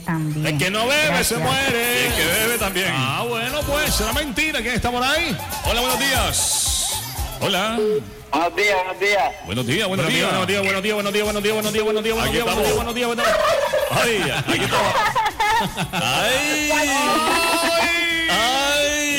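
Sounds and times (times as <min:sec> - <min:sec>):
speech: 0:00.1 - 0:06.6, 0:07.4 - 0:17.5
laughter: 0:05.1 - 0:07.5, 0:12.4 - 0:19.1
turkeys gobbling: 0:05.2 - 0:07.8, 0:13.2 - 0:14.2.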